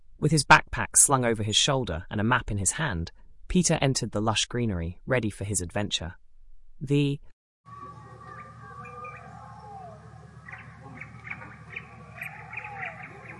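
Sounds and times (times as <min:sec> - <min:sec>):
speech: 0:00.2 - 0:06.2, 0:06.8 - 0:07.9
jungle birds chirping and calling: 0:07.7 - 0:13.3
steady humming jungle background: 0:07.7 - 0:13.3.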